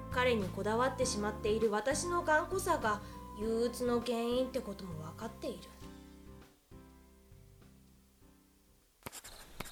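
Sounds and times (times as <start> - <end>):
speech: 0.2 - 5.9
pen scratching across paper writing a letter by hand: 9.0 - 9.6.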